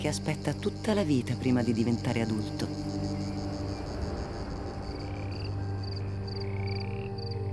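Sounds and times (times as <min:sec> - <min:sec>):
speech: 0:00.0 - 0:03.0
cicada singing in a steady dense buzz: 0:00.0 - 0:07.5.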